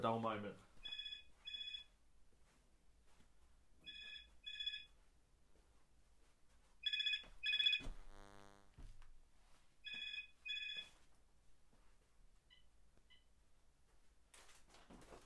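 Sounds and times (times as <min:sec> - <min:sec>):
telephone ringing in double bursts: 0:00.8 - 0:01.9, 0:03.9 - 0:04.9, 0:06.8 - 0:08.7, 0:09.8 - 0:10.9.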